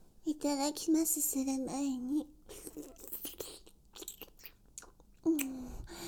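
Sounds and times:
speech: 0:00.3 - 0:03.1
wet licking and mouth sounds with smacks, slurps and tongue clicks: 0:02.5 - 0:05.6.

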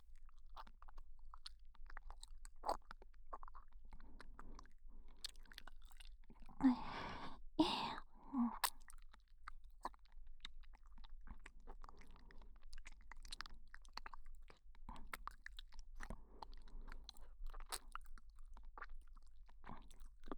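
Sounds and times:
chewing of a snack by the ear: 0:00.0 - 0:20.3.

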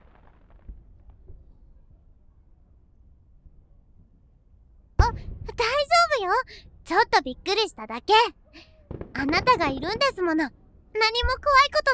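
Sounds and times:
fireworks exploding with deep rumbling booms: 0:00.0 - 0:01.6, 0:05.0 - 0:05.9, 0:08.8 - 0:10.2
speech: 0:06.2 - 0:08.4, 0:09.2 - 0:11.9.

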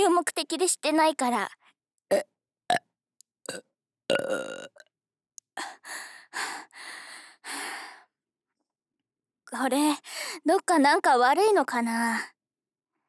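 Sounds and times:
speech: 0:00.0 - 0:02.8, 0:03.5 - 0:04.8, 0:09.5 - 0:12.4
person burping: 0:02.1 - 0:02.8, 0:03.5 - 0:04.8.

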